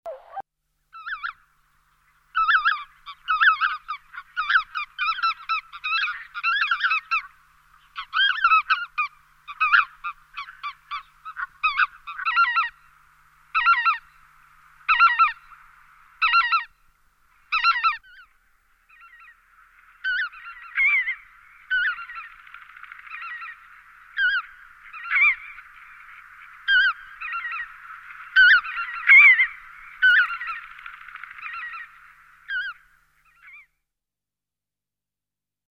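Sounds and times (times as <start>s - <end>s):
lesser white-fronted goose calling: 0.1s - 0.4s, 2.4s - 12.8s, 13.5s - 14.2s, 14.9s - 15.6s, 16.2s - 16.7s, 17.5s - 18.3s, 20.0s - 33.6s.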